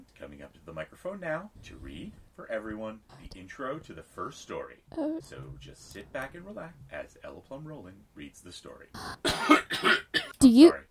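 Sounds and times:
speech: 0.2s - 10.8s
person coughing in throaty, hoarse bursts: 9.0s - 10.4s.

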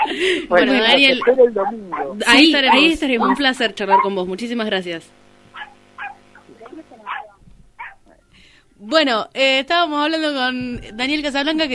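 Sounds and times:
laughter: 0.0s - 3.4s
speech: 0.1s - 5.2s, 8.8s - 11.7s
dogs barking and yelping while scuffling: 1.0s - 4.2s, 5.5s - 8.2s.

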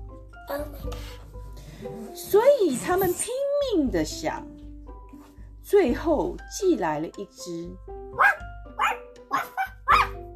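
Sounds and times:
speech: 0.5s - 1.2s, 1.8s - 4.5s, 5.7s - 8.4s
dog barking: 8.2s - 10.2s.

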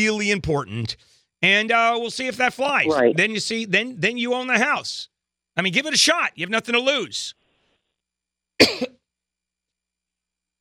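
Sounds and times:
speech: 0.0s - 7.4s, 8.6s - 9.0s
person coughing: 8.6s - 9.1s.

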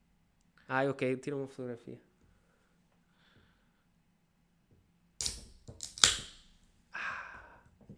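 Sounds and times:
speech: 0.7s - 2.1s
soda can tab metallic clicks: 5.2s - 6.4s
soda can opening pop: 5.2s - 6.6s.

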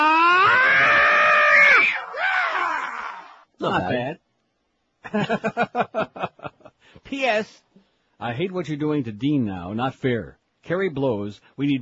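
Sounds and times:
loud shrill recorded screams: 0.0s - 3.5s
speech: 3.7s - 4.2s, 5.1s - 6.0s, 7.1s - 7.6s, 8.2s - 11.8s.

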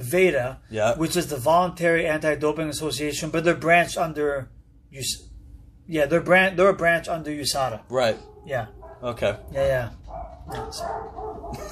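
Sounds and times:
speech: 0.1s - 5.3s, 5.9s - 11.7s
dogs barking indoors: 8.0s - 11.7s.

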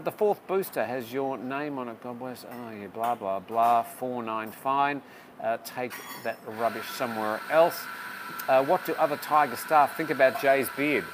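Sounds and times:
speech: 0.0s - 11.1s
coffee maker running with continuous hiss and hum: 6.5s - 11.1s.

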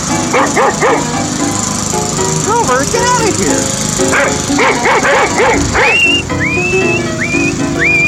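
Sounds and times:
hum: 0.0s - 8.0s
dog barking and yipping: 0.3s - 1.3s, 4.0s - 6.3s
speech: 0.4s - 1.4s, 2.3s - 7.2s
rising whistle tones: 5.8s - 8.0s.

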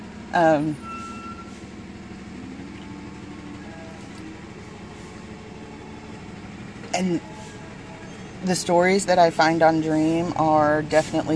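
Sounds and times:
speech: 0.3s - 0.9s, 7.0s - 7.3s, 8.4s - 11.3s
truck air brakes squealing whine: 0.6s - 1.9s.

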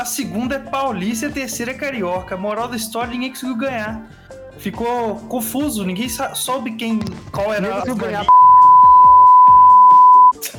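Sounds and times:
speech: 0.0s - 8.4s
censor beep: 8.3s - 10.4s.

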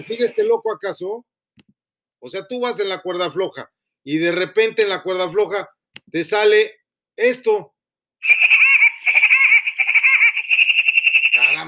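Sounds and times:
speech: 0.0s - 8.5s
cartoon woodpecker laugh sound effect, shrill piercing cackle: 8.2s - 11.6s.

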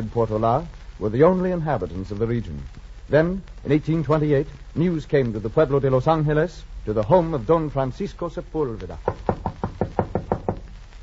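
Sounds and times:
speech: 0.0s - 9.3s
knocking on the door of a home: 9.0s - 10.7s.

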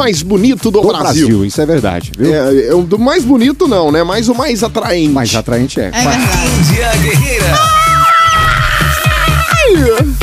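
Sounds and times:
speech: 0.0s - 8.0s
steady rhythmic thumping beat: 0.0s - 10.2s
person arriving shouting a drawn-out cry: 6.0s - 6.6s, 7.4s - 9.8s.

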